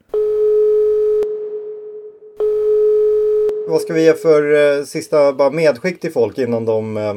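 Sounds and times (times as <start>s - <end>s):
telephone ringing tone while a call connects: 0.1s - 4.7s
speech: 3.7s - 7.1s.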